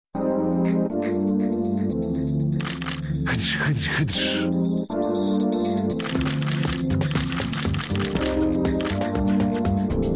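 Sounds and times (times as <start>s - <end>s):
loud steady musical backing: 0.2s - 10.1s
quick mechanical camera shutter clicks: 2.6s - 3.1s, 6.0s - 9.1s
speech: 3.3s - 6.2s.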